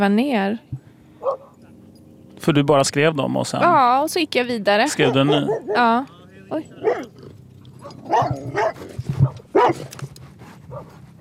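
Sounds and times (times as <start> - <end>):
speech: 0.0 - 0.8, 2.4 - 7.1, 7.9 - 10.1
dog barking aggressively: 1.2 - 1.5, 4.9 - 6.0, 6.7 - 10.0, 10.6 - 11.1
dog whiny yelps: 1.2 - 1.6, 4.8 - 10.0, 10.7 - 11.1.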